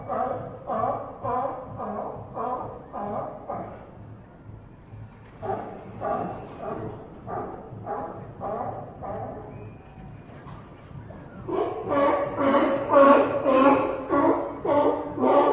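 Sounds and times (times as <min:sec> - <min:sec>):
sea lion barking: 0:00.0 - 0:03.9, 0:05.4 - 0:09.6, 0:11.4 - 0:15.5.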